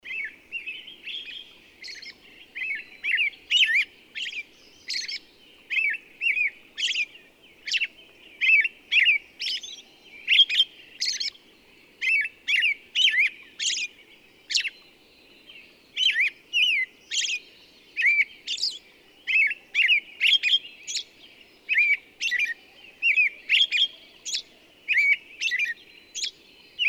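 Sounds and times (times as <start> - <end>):
bird song chirps and trills: 0.0 - 26.8.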